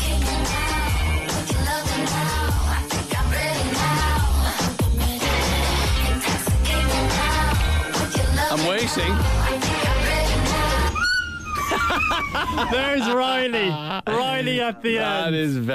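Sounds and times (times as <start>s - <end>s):
pop track with heavy bass and a steady beat: 0.0s - 11.8s
speech: 8.8s - 9.4s, 12.5s - 15.7s
laughter: 11.6s - 15.0s.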